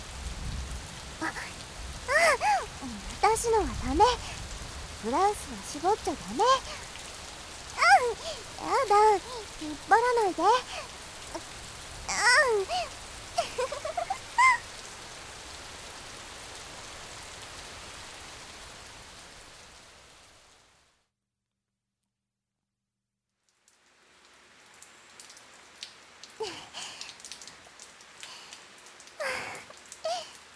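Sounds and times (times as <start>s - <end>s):
sharp rain drips and splashes: 0.0s - 19.5s, 23.4s - 30.5s
steady rain falling: 0.0s - 21.0s, 23.4s - 30.5s
speech: 2.8s - 4.4s, 5.0s - 6.8s, 8.0s - 11.5s, 12.4s - 13.0s.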